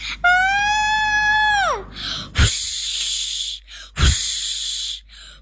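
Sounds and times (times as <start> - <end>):
shorter falling shrieks: 0.0 - 3.6
high-pitched scream: 0.2 - 4.8.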